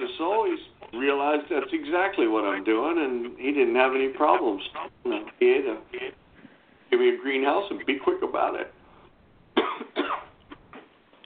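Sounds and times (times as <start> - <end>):
speech: 0.2 - 6.0, 7.0 - 8.8
throat sounds: 4.3 - 6.2
person coughing: 9.6 - 10.9.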